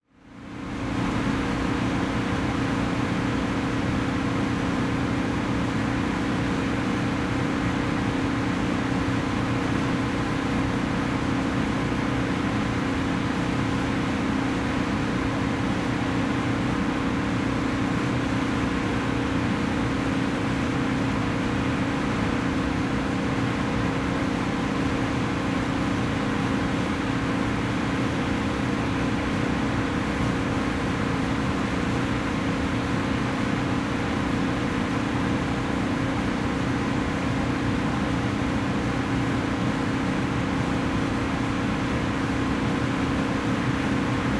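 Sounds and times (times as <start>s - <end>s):
industry factory generator: 0.2s - 44.3s.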